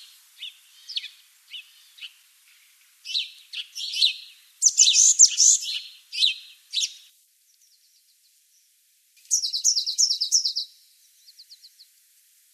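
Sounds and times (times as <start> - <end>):
Eurasian blue tit Cyanistes caeruleus high short notes: 0.4 - 7.1, 9.3 - 10.7.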